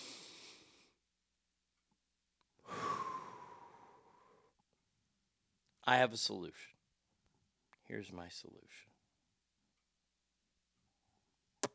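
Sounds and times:
people taking deep breaths: 2.6 - 4.5
speech: 5.9 - 6.8, 7.9 - 8.9.

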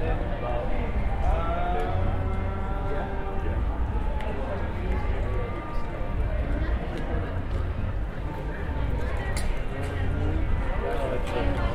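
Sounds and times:
crowd voices talking and calling out at an outdoor protest: 0.0 - 11.7
low rumble of city noise: 0.0 - 11.7.

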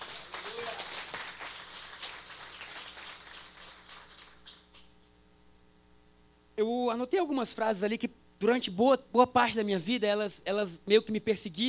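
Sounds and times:
audience applauding: 0.0 - 4.8
speech: 6.6 - 11.6.

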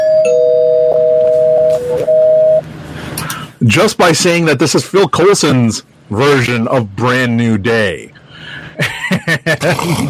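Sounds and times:
two-tone bell rung as a spoiler warning: 0.0 - 2.6
speech: 3.6 - 8.2, 8.8 - 10.0.

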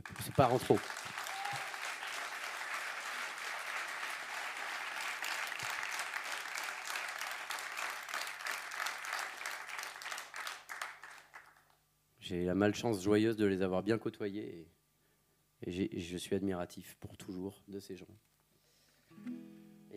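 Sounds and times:
audience applauding in an ovation for caregivers: 0.0 - 11.7
speech: 0.3 - 1.0, 12.3 - 14.8, 15.6 - 18.3, 19.2 - 19.9.

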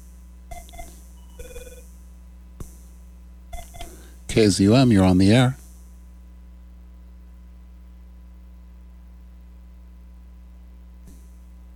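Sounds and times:
telephone ringing with a call to a radio call-in show: 0.5 - 1.8
speech: 4.4 - 5.6.

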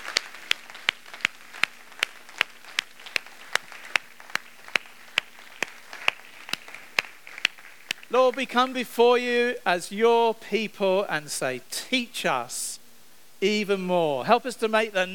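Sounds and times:
church audience clapping after praying: 0.0 - 8.7
speech: 8.1 - 12.7, 13.4 - 15.1.

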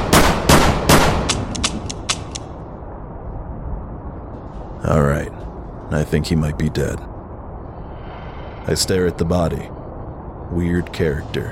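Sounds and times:
gunshots: 0.0 - 2.4
speech: 4.9 - 7.1, 8.7 - 9.7, 10.5 - 11.5.

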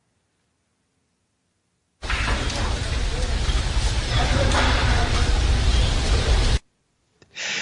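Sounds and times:
open cremation fires roaring and crackling: 2.0 - 6.6.

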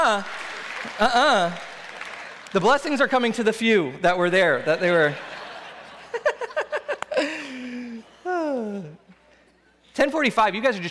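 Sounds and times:
thin scattered applause from an audience: 0.0 - 3.5
speech: 0.1 - 0.4, 1.0 - 1.7, 2.5 - 5.3, 10.0 - 10.8
laughter: 4.7 - 9.1
person calling out: 8.3 - 9.1.

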